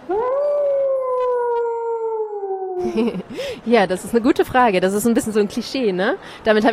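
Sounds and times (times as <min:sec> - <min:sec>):
wolf howling: 0:00.0 - 0:03.1
speech: 0:02.8 - 0:06.7.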